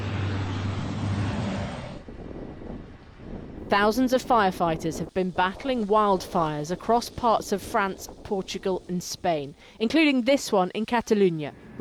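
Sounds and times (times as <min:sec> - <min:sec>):
firefighting aircraft engine roaring overhead above a highway: 0:00.0 - 0:09.9, 0:11.5 - 0:11.8
rushing wind-like noise: 0:00.0 - 0:10.5
speech: 0:03.7 - 0:11.8.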